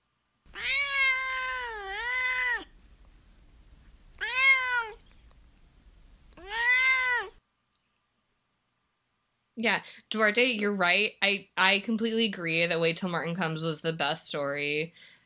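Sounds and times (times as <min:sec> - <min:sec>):
male pet cat meowing and yowling: 0:00.5 - 0:02.7, 0:04.2 - 0:05.0, 0:06.4 - 0:07.4
speech: 0:09.6 - 0:15.1.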